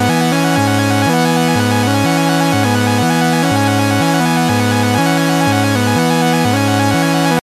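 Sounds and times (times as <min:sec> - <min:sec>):
electronic music mix: 0:00.0 - 0:07.4.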